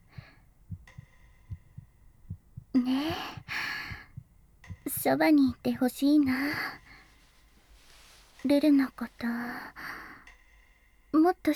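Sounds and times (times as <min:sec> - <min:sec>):
girl's heartbeat thumping through her chest: 0:00.0 - 0:07.1
speech: 0:02.8 - 0:03.4, 0:05.0 - 0:06.8, 0:08.4 - 0:09.9, 0:11.2 - 0:11.5.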